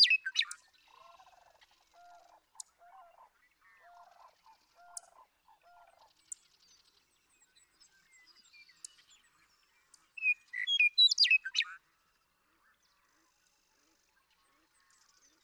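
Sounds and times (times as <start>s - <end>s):
western meadowlark singing: 0.0s - 0.8s, 7.5s - 11.8s.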